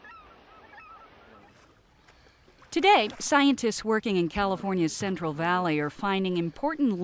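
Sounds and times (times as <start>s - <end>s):
geese honking: 0.0s - 1.7s
speech: 2.8s - 7.0s.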